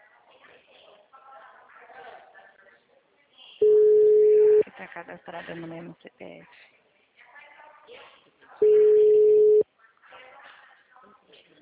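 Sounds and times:
ringback tone of an outgoing telephone call: 3.6 - 4.6, 8.6 - 9.6
speech: 4.8 - 6.8.

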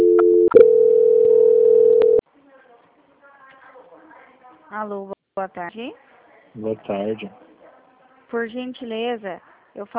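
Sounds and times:
telephone tone during a call transfer, a steady electronic hum: 0.0 - 2.2
speech: 4.8 - 7.5, 8.3 - 9.9.

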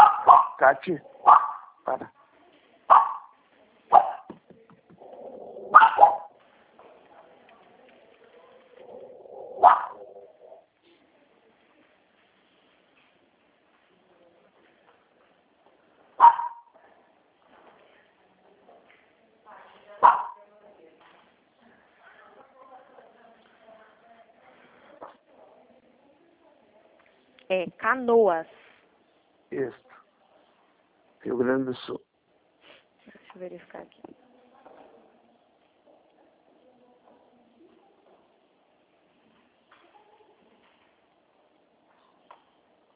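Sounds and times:
dog barking: 0.0 - 1.9, 2.9 - 4.3, 5.7 - 6.4, 9.5 - 10.2, 16.2 - 16.8, 20.0 - 20.4
speech: 0.3 - 2.2, 27.6 - 28.6, 31.3 - 32.0, 33.4 - 34.2.

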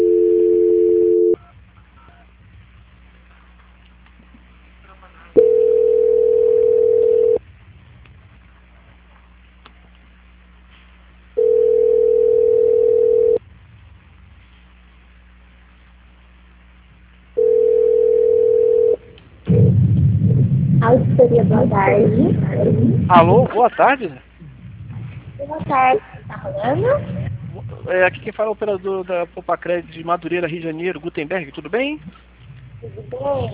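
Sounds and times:
telephone line tones during a call transfer: 0.0 - 1.4, 5.4 - 7.4, 11.4 - 13.4, 17.4 - 19.0
faint low hum: 0.0 - 33.5
speech: 23.1 - 24.3, 25.6 - 32.2, 32.8 - 33.5.

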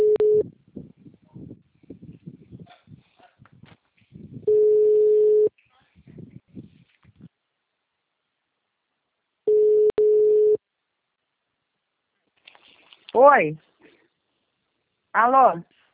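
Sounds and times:
telephone busy tone beeps after a dropped call: 0.0 - 0.4, 4.5 - 5.5, 9.5 - 10.6
speech: 13.2 - 13.7, 15.2 - 15.7.

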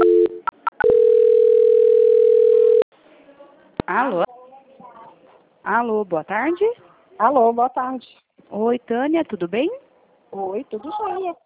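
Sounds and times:
telephone call transfer tone on a phone line: 0.0 - 2.8
speech: 5.7 - 11.4.

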